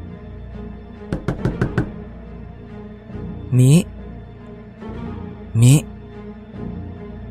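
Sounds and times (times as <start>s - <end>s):
sharp knocks on a door: 1.1s - 2.0s
speech: 3.5s - 3.9s.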